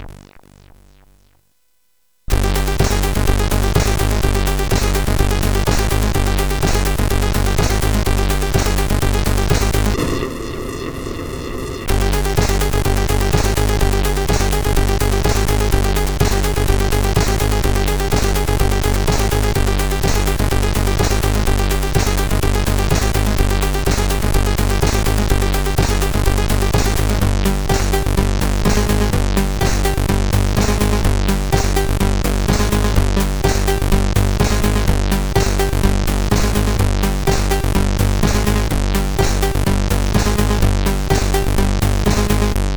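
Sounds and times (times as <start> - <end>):
techno tune on a CSG8580R5 chip: 2.3 - 10.8, 11.9 - 42.7.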